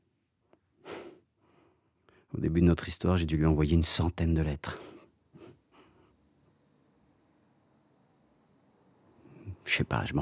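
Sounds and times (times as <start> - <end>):
single airy breath: 0.8 - 2.3, 4.8 - 6.2
speech: 2.3 - 5.0, 9.8 - 10.1.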